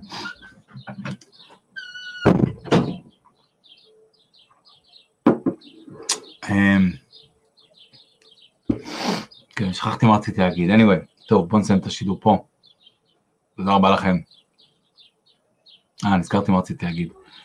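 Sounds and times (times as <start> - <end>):
faint bird chirps: 0.0 - 17.4
short scraping creak of a door: 1.8 - 2.3
wooden door thuds while being closed: 2.2 - 3.1, 5.3 - 5.6
speech: 6.5 - 7.0, 9.7 - 12.5, 13.6 - 14.4, 16.0 - 17.2.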